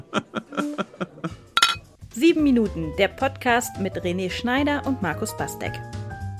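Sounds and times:
laughter: 0.0s - 1.5s
speech: 0.1s - 0.9s, 2.2s - 6.0s
beer glasses clinking in a toast: 1.6s - 1.8s.

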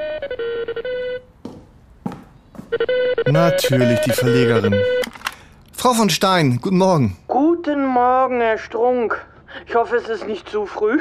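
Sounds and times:
telephone ringing with a short electronic melody: 0.0s - 1.3s, 2.6s - 5.3s
soft thuds: 1.4s - 2.7s
speech: 2.7s - 5.1s, 5.8s - 10.9s.

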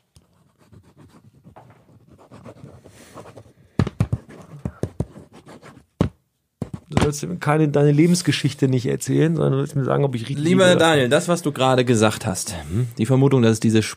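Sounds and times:
pen scratching across paper while writing: 0.3s - 3.5s, 4.1s - 6.0s
speech: 7.0s - 13.9s.

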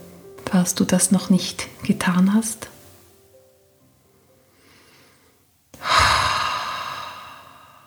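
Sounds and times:
speech: 0.5s - 2.7s
deep breath during a relaxation exercise: 4.4s - 7.8s.

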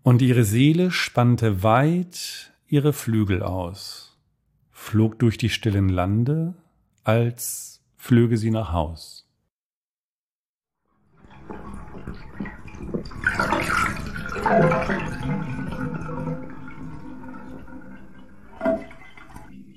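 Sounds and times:
speech: 0.0s - 4.1s, 4.8s - 9.2s, 14.5s - 15.1s
water draining out of a bathtub: 11.0s - 19.7s.

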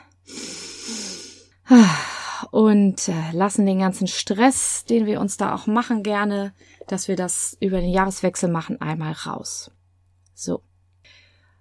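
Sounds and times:
slow deep relaxed inhalation: 0.0s - 2.4s
partly voiced sighing exhale: 0.3s - 2.2s
speech: 2.6s - 9.8s, 10.4s - 11.2s.

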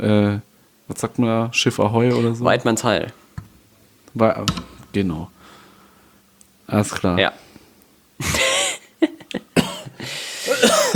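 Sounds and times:
speech: 0.0s - 3.2s, 4.2s - 5.4s, 6.7s - 7.4s
person coughing: 2.1s - 2.4s, 9.6s - 10.9s.

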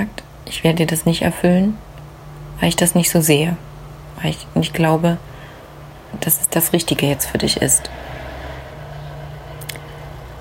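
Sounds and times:
speech: 0.0s - 1.9s, 2.6s - 5.3s, 6.1s - 8.1s
car passing by: 7.1s - 10.3s.

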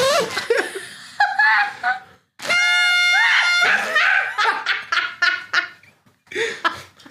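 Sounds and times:
laughter: 0.3s - 2.1s, 3.6s - 7.0s
party blowers giving buzzy reedy toots: 2.4s - 4.5s.

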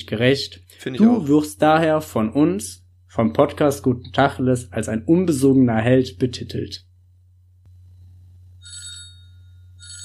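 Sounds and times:
low steady hum: 0.0s - 10.0s
speech: 0.1s - 6.9s
telephone ringing with an incoming call: 8.6s - 10.0s.

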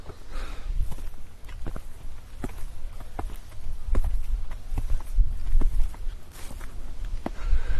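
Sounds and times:
footsteps walking up the slope of a grassy dike outdoors: 0.0s - 7.7s.

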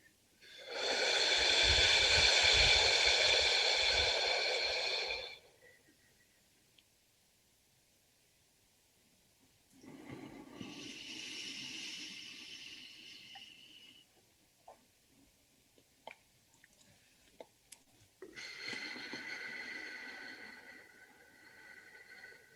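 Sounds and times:
deep exhalation during a breathing exercise: 0.4s - 5.8s, 9.9s - 14.1s, 18.3s - 22.5s.

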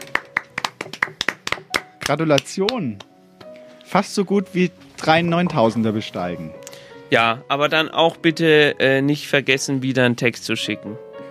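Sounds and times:
hand clapping: 0.0s - 3.1s
speech: 2.1s - 3.1s, 3.9s - 11.0s.

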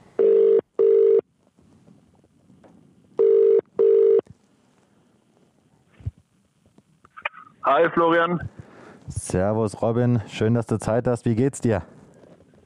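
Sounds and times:
outgoing phone call ringback tone: 0.2s - 1.2s, 3.2s - 4.2s
speech: 7.7s - 8.6s, 9.3s - 12.0s.

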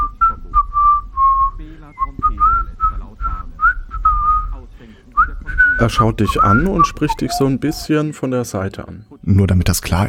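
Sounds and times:
man strolling about whistling a casual tune: 0.0s - 4.6s, 5.2s - 7.9s
speech: 5.8s - 10.0s.

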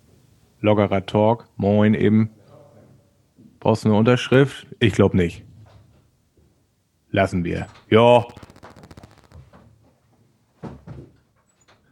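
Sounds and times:
speech: 0.6s - 2.4s, 3.6s - 5.5s, 7.1s - 8.4s
rapid rattling buzz: 8.1s - 9.5s.

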